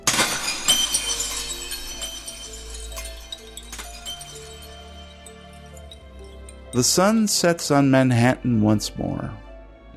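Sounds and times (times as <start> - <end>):
crystal figure shattering: 0.0 - 7.5
tinkling crystal shards: 0.0 - 7.5
speech: 6.7 - 9.4.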